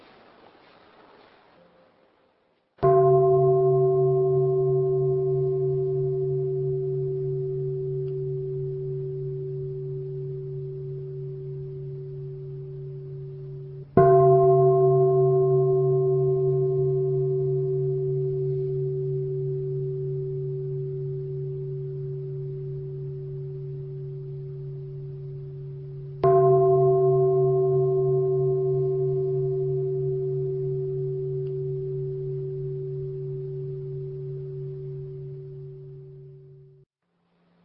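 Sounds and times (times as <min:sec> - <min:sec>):
Buddhist meditation bell struck in Ho Chi Minh City: 0:02.8 - 0:36.9.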